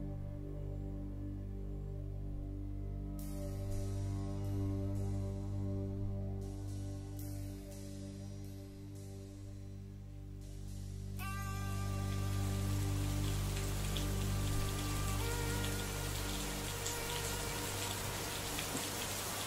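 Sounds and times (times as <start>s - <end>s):
low tonal drone: 0.0s - 19.4s
rain falling: 11.2s - 19.4s.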